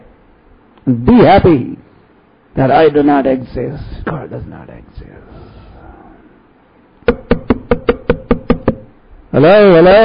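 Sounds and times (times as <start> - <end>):
quiet noise: 0.0 - 10.0
speech: 0.8 - 1.8, 2.6 - 5.5, 9.4 - 10.0
knocks on a wooden door: 7.1 - 8.9.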